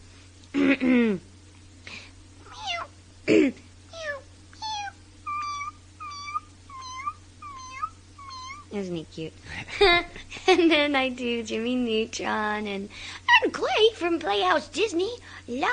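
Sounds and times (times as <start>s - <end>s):
speech: 0.6s - 1.3s, 8.9s - 15.7s
voice actor imitating a tiny baby kitten's meow: 2.4s - 2.9s, 3.9s - 8.8s.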